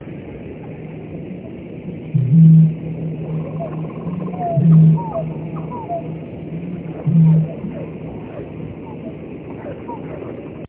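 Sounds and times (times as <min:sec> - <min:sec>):
bittern booming: 0:02.2 - 0:07.8.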